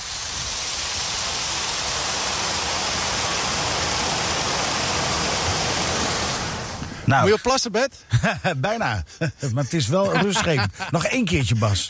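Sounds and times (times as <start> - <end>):
water pouring over a weir on a river during a drought: 0.0 - 7.1
speech: 7.1 - 11.8
laughter: 8.1 - 8.6, 9.2 - 11.8.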